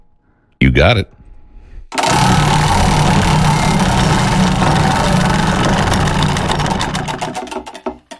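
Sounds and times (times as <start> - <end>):
speech: 0.6 - 1.2
prize wheel spinning in a radio name-drawing game: 2.0 - 8.1.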